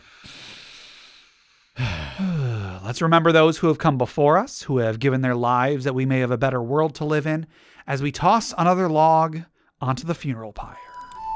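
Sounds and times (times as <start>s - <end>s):
person taking a deep breath: 0.0s - 2.9s, 7.5s - 7.9s
speech: 2.9s - 10.9s.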